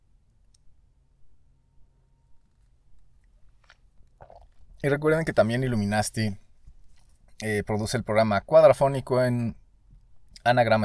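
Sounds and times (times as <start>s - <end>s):
person sipping coffee: 3.5s - 4.8s
soft slurping and mouth sounds: 4.2s - 4.8s
speech: 4.8s - 6.4s, 7.4s - 9.6s, 10.4s - 10.8s.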